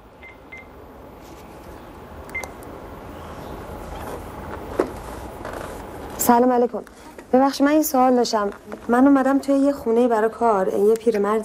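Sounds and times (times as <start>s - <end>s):
steady hiss: 0.0s - 11.4s
keypad beeps from a phone being dialed: 2.3s - 2.6s
speech: 6.3s - 11.4s.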